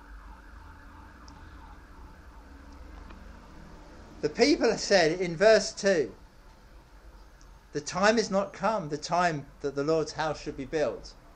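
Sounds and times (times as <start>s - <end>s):
emergency sirens wailing outside: 0.0s - 5.3s
steady low rumble of road traffic: 0.0s - 11.3s
speech: 4.2s - 6.2s, 7.7s - 11.2s.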